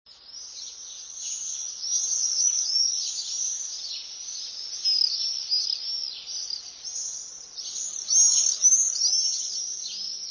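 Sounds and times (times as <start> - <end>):
swifts giving high-pitched screaming calls: 0.4 - 10.2.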